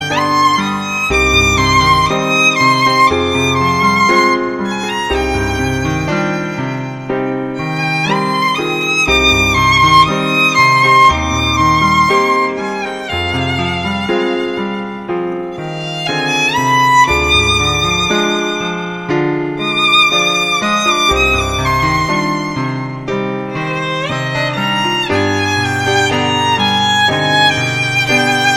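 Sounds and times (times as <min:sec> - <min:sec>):
piano: 0:00.0 - 0:28.5
violin: 0:00.0 - 0:28.5.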